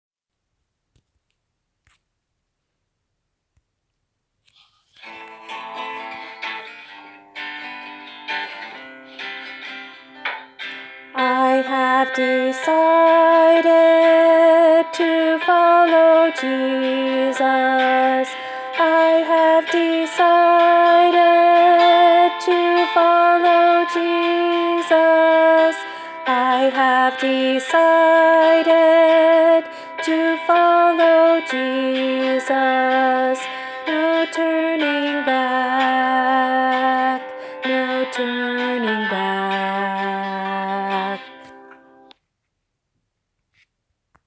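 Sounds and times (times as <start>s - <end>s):
alto voice: 11.2s - 41.5s.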